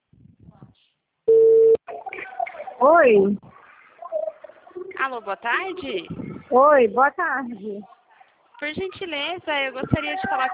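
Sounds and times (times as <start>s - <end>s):
telephone ringback tone on an outgoing call: 1.3s - 1.8s
speech: 2.8s - 3.4s, 5.1s - 8.0s, 8.6s - 10.5s.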